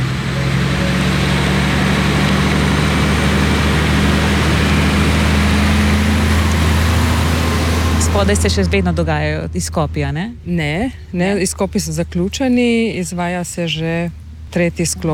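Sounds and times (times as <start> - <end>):
heavy truck engines rumbling hauling material from railway tunnel construction: 0.0 - 15.1
speech: 8.2 - 15.1.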